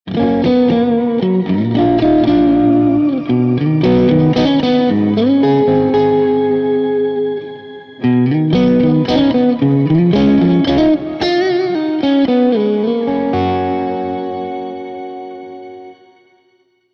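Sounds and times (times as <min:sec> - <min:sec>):
Fender Road Worn 60s Strat electric guitar through Carvin Legacy III amplifier and Eventide H9: 0:00.1 - 0:16.4.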